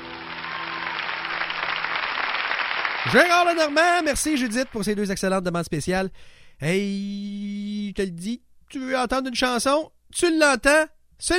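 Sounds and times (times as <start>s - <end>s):
applause: 0.0s - 5.1s
speech: 3.0s - 11.3s.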